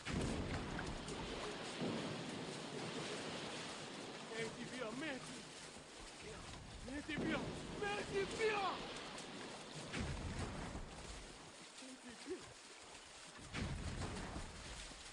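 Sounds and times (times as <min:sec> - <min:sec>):
boat approaching across open water: 0:00.0 - 0:15.1
wash of waves: 0:00.0 - 0:15.1
speech: 0:04.8 - 0:05.4, 0:06.2 - 0:09.0
people's voices calling out: 0:07.2 - 0:09.0.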